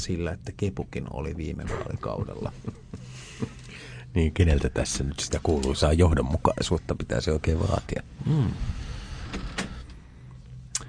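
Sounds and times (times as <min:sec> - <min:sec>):
speech: 0:00.0 - 0:08.8
door creaking: 0:09.0 - 0:10.0.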